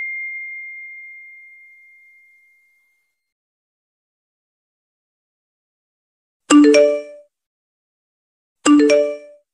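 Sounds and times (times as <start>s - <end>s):
iPhone notification sound: 6.5s - 7.2s, 8.7s - 9.4s.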